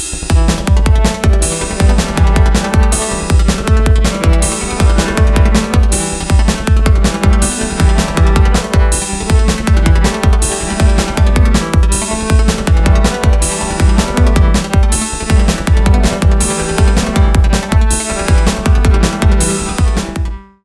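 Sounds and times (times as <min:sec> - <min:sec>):
rock music: 0:00.1 - 0:20.4.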